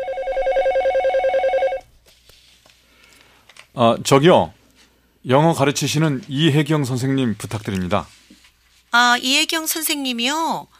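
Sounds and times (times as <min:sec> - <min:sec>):
telephone ringing with a fast warbling electronic trill: 0:00.0 - 0:01.9
speech: 0:03.8 - 0:04.6, 0:05.2 - 0:08.2, 0:08.9 - 0:10.7.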